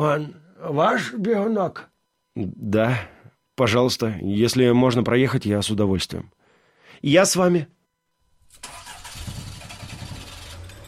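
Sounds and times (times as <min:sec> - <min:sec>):
speech: 0:00.0 - 0:07.8
car engine cranking and idling: 0:08.5 - 0:10.8.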